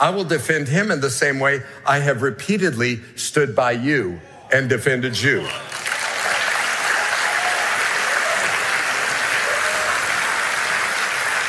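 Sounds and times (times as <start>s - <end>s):
speech: 0.0s - 5.9s
sustained applause from a large audience: 5.4s - 11.4s.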